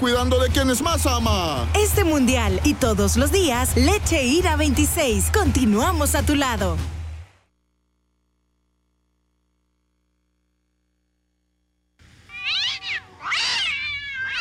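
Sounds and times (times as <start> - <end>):
speech: 0.0 - 7.0
cats meowing: 12.3 - 14.3.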